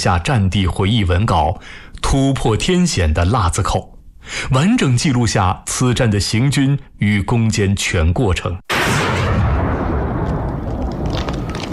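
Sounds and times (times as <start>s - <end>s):
speech: 0.0s - 8.6s
gunfire barrage at Lazikou pass in China during the 1935 battle: 8.7s - 11.7s
heavy booming rumble: 8.7s - 11.7s.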